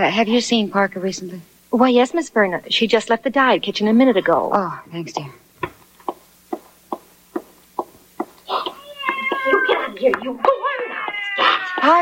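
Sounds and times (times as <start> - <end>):
speech: 0.0 - 5.4
evenly spaced taps: 5.2 - 10.3
cat meowing and caterwauling inside a building: 8.5 - 10.0, 10.6 - 11.9.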